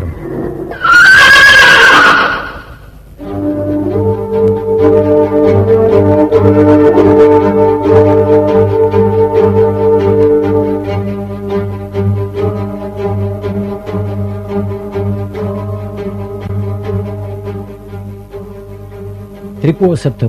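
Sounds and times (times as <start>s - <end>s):
loud horse whinnying: 0.1s - 2.9s
steady droning music with faint rhythmic taps: 2.6s - 20.2s
speech: 19.8s - 20.2s.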